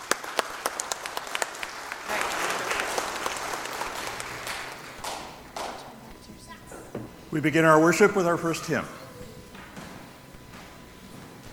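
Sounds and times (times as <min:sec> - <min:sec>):
congregation applauding veterans: 0:00.0 - 0:05.9
speech: 0:07.3 - 0:09.0.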